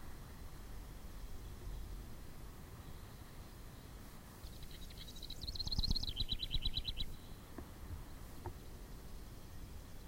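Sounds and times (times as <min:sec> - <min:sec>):
low-pitched background noise: 0:00.0 - 0:10.0
house wren singing bubbling song with rapid trill: 0:02.8 - 0:10.0.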